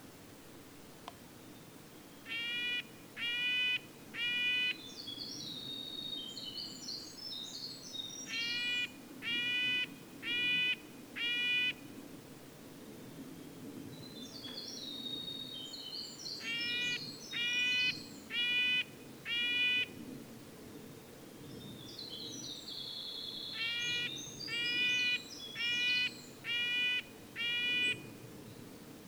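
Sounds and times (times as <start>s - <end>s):
red-breasted nuthatch nasal horn-like calls: 2.2s - 4.8s, 8.3s - 11.8s, 16.4s - 19.9s, 23.5s - 28.1s.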